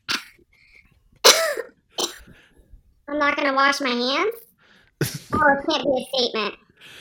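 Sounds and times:
person coughing: 0:01.2 - 0:02.3
speech: 0:03.1 - 0:04.4, 0:05.0 - 0:06.9
laughter: 0:05.0 - 0:05.4.

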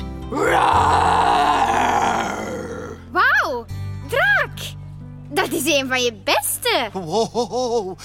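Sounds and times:
speech: 0:00.3 - 0:00.8, 0:05.5 - 0:08.0
person imitating a dragon's rasping growl: 0:00.3 - 0:03.1
swooping vocal groans: 0:00.3 - 0:03.1
laughter: 0:07.0 - 0:08.0.

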